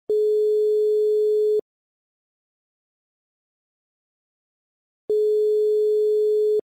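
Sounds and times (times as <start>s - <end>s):
Algerian telephone ringback tone: 0.1s - 1.6s, 5.1s - 6.6s.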